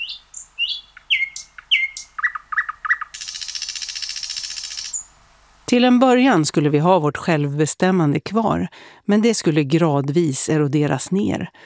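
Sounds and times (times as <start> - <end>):
nightingale singing: 0.0 - 6.8
speech: 5.7 - 11.6.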